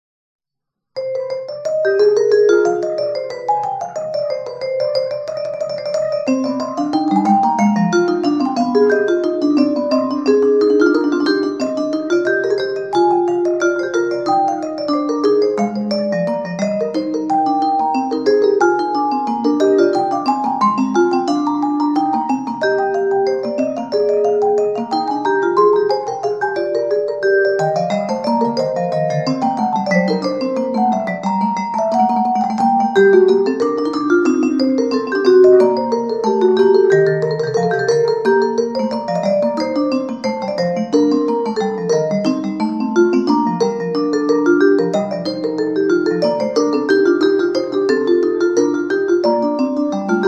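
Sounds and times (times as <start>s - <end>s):
mallet percussion piece in C minor: 1.0s - 50.2s.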